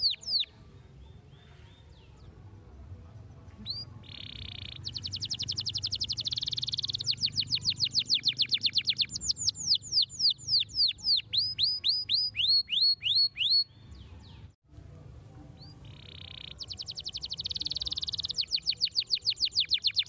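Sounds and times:
Belgian canary singing: 0.0s - 0.5s, 3.6s - 14.6s, 15.6s - 20.0s.

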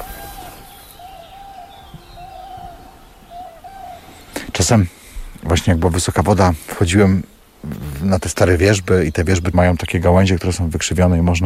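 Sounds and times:
common cranes calling in a wetland: 0.0s - 5.1s
noise in a wetland: 0.0s - 11.4s
speech: 4.6s - 11.4s.

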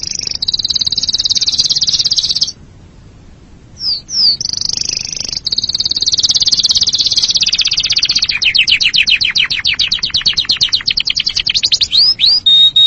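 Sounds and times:
canary singing trills: 0.0s - 2.6s, 3.8s - 12.8s.

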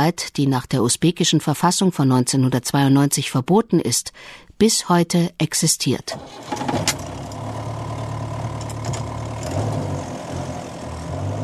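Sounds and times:
speech: 0.0s - 7.0s
vehicle engine droning while driving on gravel and dirt roads: 6.2s - 11.4s.

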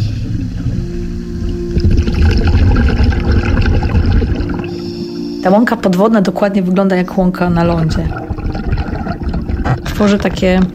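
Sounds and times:
underwater rumble during a dive into a bay's seagrass meadow: 0.0s - 5.2s, 7.3s - 10.7s
faint tonal hum: 0.0s - 10.7s
bubbles crackling underwater: 1.4s - 5.7s, 7.1s - 10.7s
speech: 5.4s - 8.2s, 9.8s - 10.7s.

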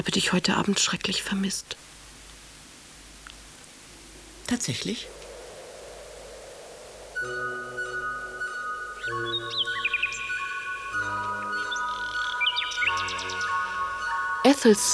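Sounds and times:
speech: 0.0s - 1.9s, 4.5s - 5.2s, 7.2s - 7.5s, 14.5s - 14.9s
nightingales singing in the evening: 3.9s - 14.9s
steady sustained harmonic drone: 4.1s - 14.9s.

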